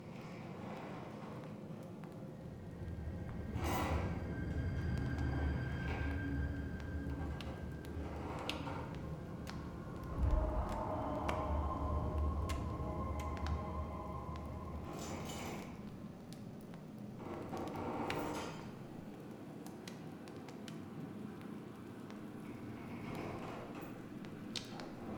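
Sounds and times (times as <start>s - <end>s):
indoor ambience: 0.2s - 19.3s, 21.2s - 25.1s.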